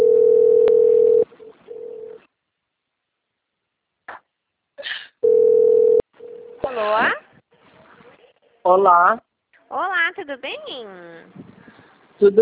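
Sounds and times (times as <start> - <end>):
telephone tone on a call from a bank: 0.0 - 2.2, 5.2 - 6.4
speech: 8.7 - 11.5, 12.2 - 12.4.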